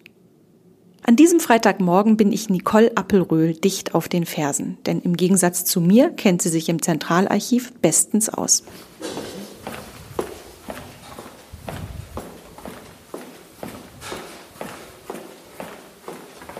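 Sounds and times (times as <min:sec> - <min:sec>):
speech: 0:01.1 - 0:09.3
woman's brisk footsteps on a hard floor in a company's central archive: 0:08.6 - 0:16.5.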